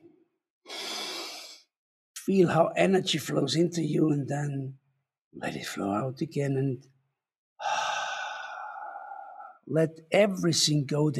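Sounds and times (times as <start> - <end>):
deep drawn-out inhaling breath: 0.7 - 1.7, 7.6 - 9.6
speech: 2.3 - 7.0, 9.7 - 11.1.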